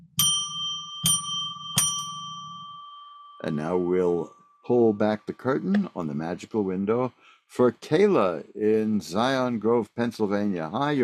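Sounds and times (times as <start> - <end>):
bell ringing: 0.0 - 5.1
speech: 3.4 - 11.0.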